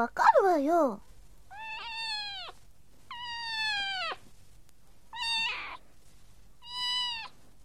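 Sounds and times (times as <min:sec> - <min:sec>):
speech: 0:00.0 - 0:01.1
cat meowing: 0:01.5 - 0:04.2, 0:05.1 - 0:05.8, 0:06.6 - 0:07.4.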